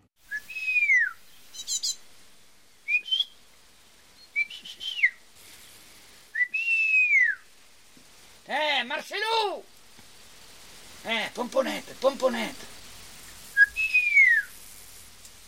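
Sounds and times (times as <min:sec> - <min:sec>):
old bird breeder whistling to call his birds for feeding: 0:00.3 - 0:02.0, 0:02.8 - 0:03.4, 0:04.2 - 0:05.2, 0:06.3 - 0:07.5, 0:13.5 - 0:14.5
man calling out: 0:08.5 - 0:09.7, 0:11.0 - 0:12.8
speech: 0:11.0 - 0:12.8.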